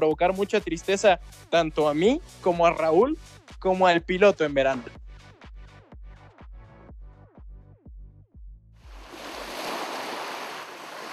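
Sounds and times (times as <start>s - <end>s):
speech: 0.0s - 5.0s
ocean surf waves breaking: 8.9s - 11.1s.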